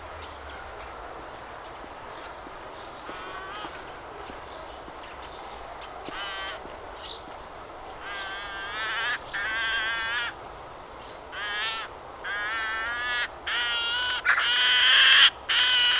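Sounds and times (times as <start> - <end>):
faint steady hiss: 0.0 - 15.9
Eurasian magpie Pica pica giving harsh grating calls: 8.0 - 10.4, 11.3 - 15.9.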